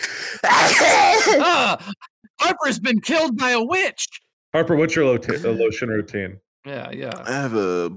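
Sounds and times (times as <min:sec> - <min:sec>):
person sneezing: 0:00.0 - 0:02.0
speech: 0:01.3 - 0:07.9.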